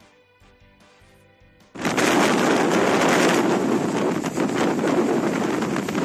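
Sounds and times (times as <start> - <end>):
strong wind gusts blowing through a city on a stormy autumn morning: 1.8 - 6.0.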